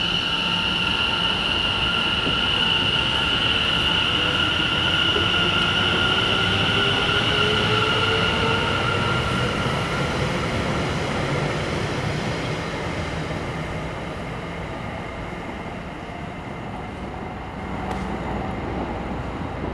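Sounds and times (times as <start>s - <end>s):
train wheels squealing: 0.0s - 13.3s
train rumbling at a cold station platform: 0.0s - 19.7s.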